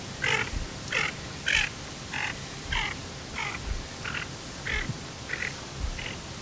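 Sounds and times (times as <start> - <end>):
tufted duck Aythya fuligula: 0.2 - 6.2.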